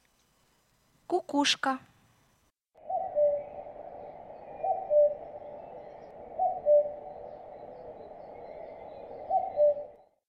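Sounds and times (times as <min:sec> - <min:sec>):
cuckoo: 0:02.8 - 0:10.2.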